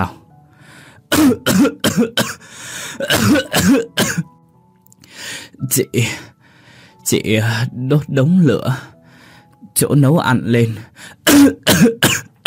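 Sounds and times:
speech: 0.0s - 0.2s, 1.1s - 2.4s, 3.0s - 4.3s, 5.6s - 6.3s, 7.1s - 8.9s, 9.8s - 12.4s
harsh dry coughing: 1.1s - 4.3s, 11.2s - 12.4s.

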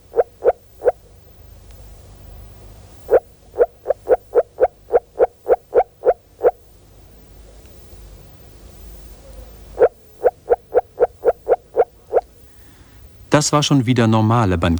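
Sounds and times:
frog calling in water at 12 degrees: 0.0s - 1.2s, 3.0s - 6.7s, 9.1s - 12.4s
speech: 13.4s - 14.7s.

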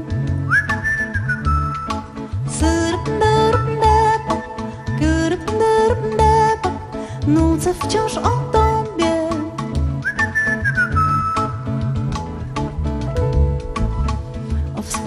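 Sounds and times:
Polish pop song band accompaniment: 0.0s - 15.0s
person whistling a tune in a Polish pop song: 0.4s - 2.2s, 10.0s - 11.9s
speech: 7.3s - 8.5s.

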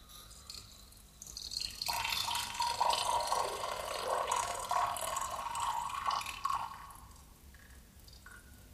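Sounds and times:
water sputtering through a tap as the pipe runs dry: 1.2s - 7.0s.

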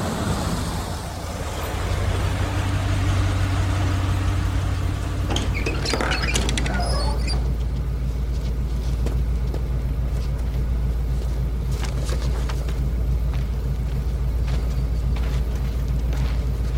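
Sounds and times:
bus pulling up to a stop with engine rumble: 0.0s - 16.7s
light rattling and pattering clatter: 4.2s - 16.7s.

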